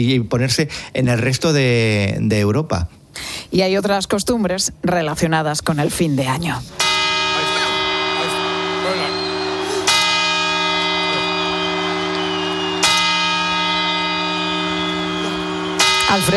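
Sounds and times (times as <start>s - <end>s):
speech: 0.0s - 6.9s, 16.1s - 16.3s
large clock-tower bell striking at midnight on New Year in Spain: 6.7s - 16.3s.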